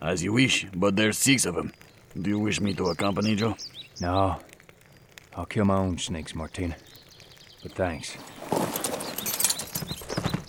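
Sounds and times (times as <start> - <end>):
speech: 0.0 - 4.5, 5.4 - 7.0, 7.6 - 9.0
horse hooves clip-clopping as a rider rides off: 8.2 - 10.4.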